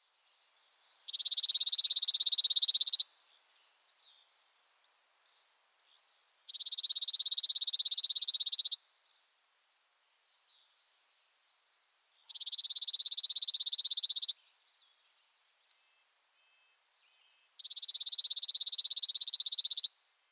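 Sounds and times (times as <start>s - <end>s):
chipping sparrow dry rapid trill: 1.1s - 3.3s, 6.5s - 8.8s, 12.3s - 14.4s, 17.6s - 20.0s.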